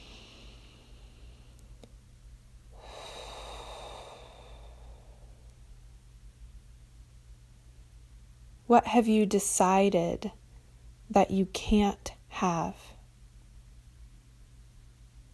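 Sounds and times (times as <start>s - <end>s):
long deep breath: 0.0s - 1.8s, 2.7s - 5.6s
low steady hum: 0.0s - 15.3s
speech: 8.7s - 10.4s, 11.1s - 12.9s.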